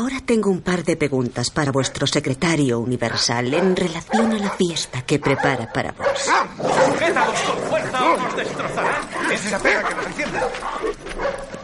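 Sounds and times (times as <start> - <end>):
speech: 0.0 - 11.5
dogs barking aggressively: 3.0 - 11.6.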